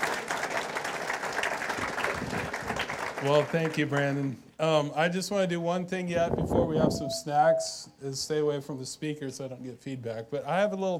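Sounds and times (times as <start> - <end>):
audience applause: 0.0 - 3.8
speech: 3.2 - 10.9.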